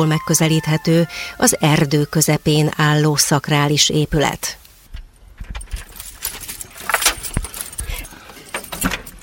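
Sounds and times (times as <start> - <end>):
speech: 0.0 - 4.6
keys jangling: 5.5 - 9.2.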